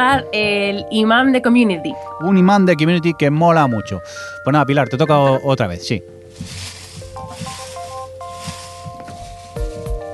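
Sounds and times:
speech: 0.0 - 6.6
papers being handled and shuffled while drawing a giveaway winner: 6.2 - 10.1.

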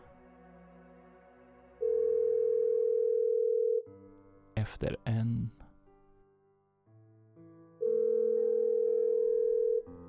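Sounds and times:
soft music: 0.0 - 10.0
telephone ringback tone: 1.8 - 3.9, 7.8 - 9.9
speech: 4.6 - 5.6.

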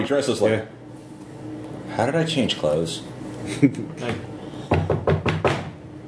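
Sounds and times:
speech: 0.0 - 0.8, 2.0 - 5.1
sharp knocking on a door: 4.7 - 5.8.

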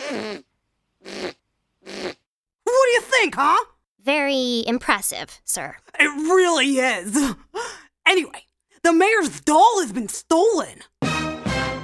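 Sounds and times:
wet buzzy fart noises made by squeezing a hand against an armpit: 0.0 - 2.3
speech: 0.1 - 0.5, 3.2 - 11.0.

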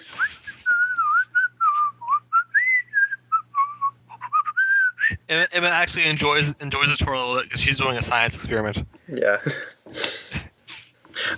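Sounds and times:
faint low hum: 0.0 - 11.3
man whistling a cheerful melody: 0.1 - 5.2
speech: 5.3 - 10.0.

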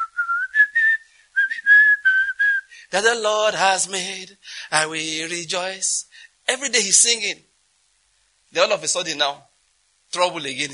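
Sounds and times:
man whistling a cheerful tune inside a keke: 0.0 - 2.8
speech: 2.9 - 7.5, 8.5 - 9.5, 10.1 - 10.7.

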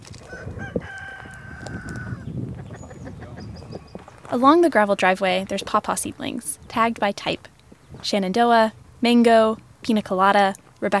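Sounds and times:
rooster crowing: 0.2 - 2.3
flock of chickens clucking in a field under a silver maple tree: 1.8 - 8.0
speech: 4.3 - 10.9.

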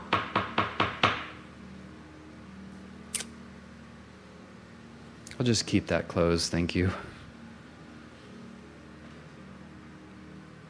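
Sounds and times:
quiet room hum: 0.0 - 10.6
knocking on a door: 0.1 - 1.4
speech: 5.4 - 7.1.

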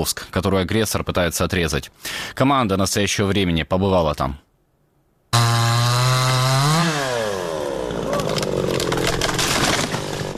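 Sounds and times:
speech: 0.0 - 4.4
chainsaw revving and cutting damaged trees for firewood: 5.4 - 10.3.

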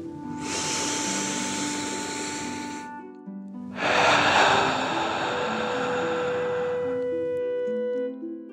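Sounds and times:
soft sustained music tones: 0.0 - 8.5
long deep breath drawn in through the nose: 0.3 - 3.0, 3.8 - 7.5.

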